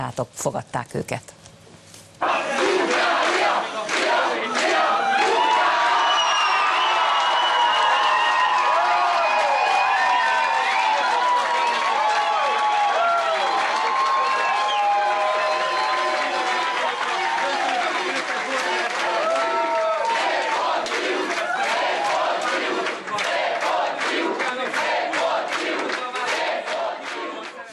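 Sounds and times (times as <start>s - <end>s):
speech: 0.1s - 1.4s
crowd of fans chanting: 2.2s - 6.4s, 15.8s - 27.7s
large crowd of fans cheering and shouting in beer gardens: 2.2s - 22.4s
scattered clapping: 2.5s - 27.7s.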